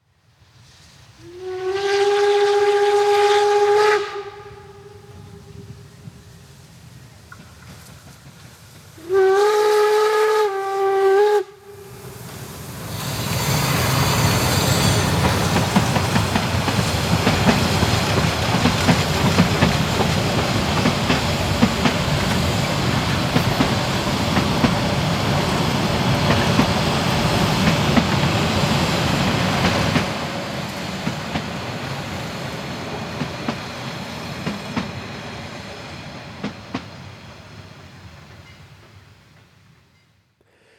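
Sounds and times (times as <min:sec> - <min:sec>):
rumble of narrow-gauge steam train wheels, rods and rolling carriages: 0:00.1 - 0:40.5
narrow-gauge steam locomotive whistle blasts: 0:01.2 - 0:06.2, 0:09.0 - 0:15.6.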